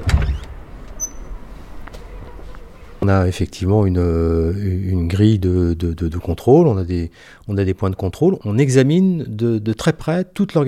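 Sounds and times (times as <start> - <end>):
entrance door opening onto a service counter with a low thump: 0.0 - 1.1
speech: 3.0 - 10.6.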